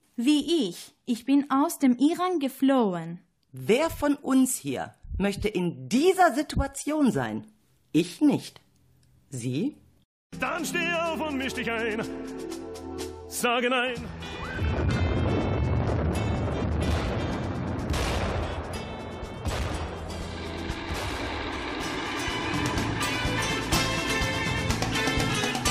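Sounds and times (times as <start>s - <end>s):
speech: 0.2s - 8.6s, 9.3s - 12.6s, 13.4s - 14.3s
heavy bomb blasts: 14.6s - 25.4s
rumbling battle din: 14.6s - 25.6s
gunfire bursts: 17.9s - 23.8s.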